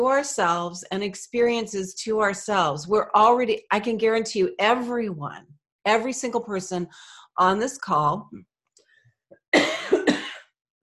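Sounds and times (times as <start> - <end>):
speech: 0.0 - 8.5
harsh loud cough: 9.6 - 10.6.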